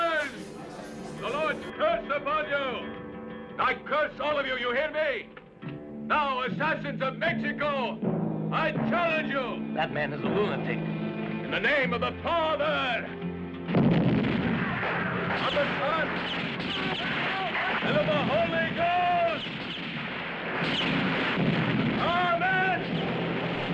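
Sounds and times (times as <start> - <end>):
speech: 1.5 - 5.4, 6.1 - 14.0, 15.4 - 17.0
explosions in a Mexican revolution battle scene in a film: 13.7 - 23.7
gunfire in a Mexican revolution battle scene in a film: 13.9 - 23.7.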